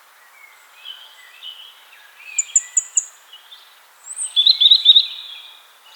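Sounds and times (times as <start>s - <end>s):
European robin singing: 0.2s - 5.9s.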